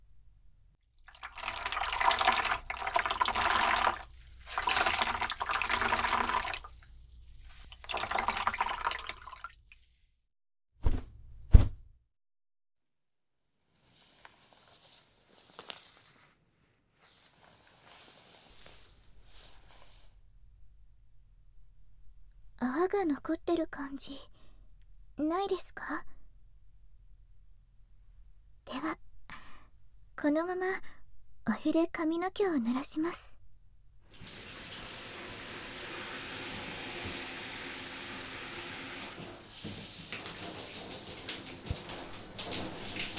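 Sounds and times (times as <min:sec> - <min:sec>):
damp hot towel wiping foam off ears: 0:01.3 - 0:10.0, 0:13.8 - 0:20.2, 0:34.1 - 0:43.1
rubbing and rustling: 0:02.4 - 0:08.8, 0:13.7 - 0:20.2, 0:39.2 - 0:43.1
speech: 0:23.0 - 0:24.4, 0:25.2 - 0:26.1, 0:30.2 - 0:33.3.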